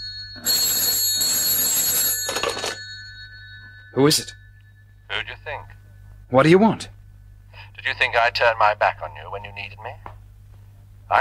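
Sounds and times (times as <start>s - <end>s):
telephone bell ringing: 0.0s - 5.1s
speech: 4.0s - 4.4s, 5.2s - 7.0s, 7.8s - 10.1s.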